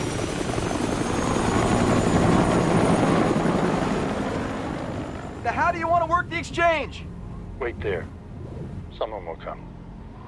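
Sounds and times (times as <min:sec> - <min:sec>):
helicopter lifting off with rotor and engine: 0:00.0 - 0:10.1
speech: 0:06.0 - 0:08.2, 0:09.0 - 0:09.7.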